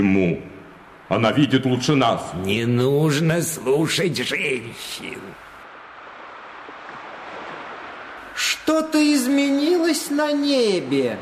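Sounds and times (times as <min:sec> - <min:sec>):
speech: 0:00.0 - 0:00.5, 0:01.1 - 0:05.5, 0:08.7 - 0:11.1
wind blowing in off the sea: 0:00.0 - 0:11.1.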